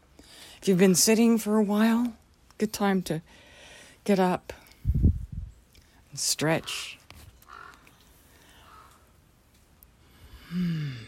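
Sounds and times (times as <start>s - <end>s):
speech: 0.6s - 3.4s, 4.0s - 5.0s, 6.2s - 7.0s
crow cawing faintly: 7.5s - 7.9s, 8.5s - 9.1s
person giving a short hum: 10.4s - 11.0s.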